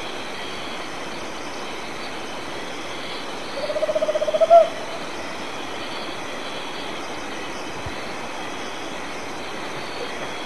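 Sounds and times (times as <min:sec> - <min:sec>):
soft steady background noise: 0:00.0 - 0:10.4
Tropical Screech-Owl song of bubbling hoots in Argentina: 0:03.6 - 0:04.9.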